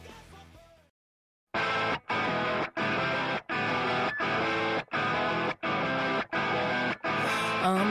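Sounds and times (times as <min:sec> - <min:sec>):
loud distorted guitar-driven punk rock band: 0:01.6 - 0:07.8.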